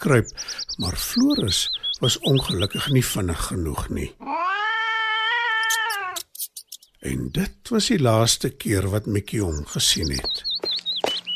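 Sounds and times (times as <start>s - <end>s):
speech: 0.0s - 4.6s, 7.0s - 10.7s
cat yowling: 4.2s - 6.3s.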